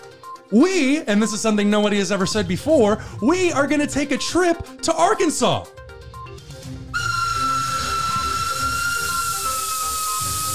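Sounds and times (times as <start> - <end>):
speech: 0.5 - 5.8
hiss: 7.0 - 10.5
old steam train whistle: 7.0 - 10.5.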